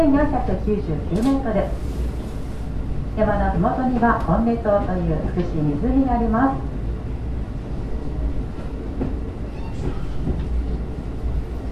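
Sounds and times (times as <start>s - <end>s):
speech: 0.0s - 2.0s, 3.2s - 6.7s
train rumbling on rails through the Kushiro Marsh in Japan heard from inside: 0.0s - 11.6s
brief high train squeaks: 9.5s - 10.4s.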